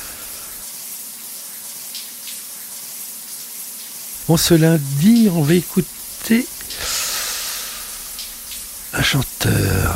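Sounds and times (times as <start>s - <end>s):
shower water running: 0.0s - 9.9s
water splashing: 4.1s - 9.9s
speech: 4.3s - 6.8s, 9.0s - 9.9s.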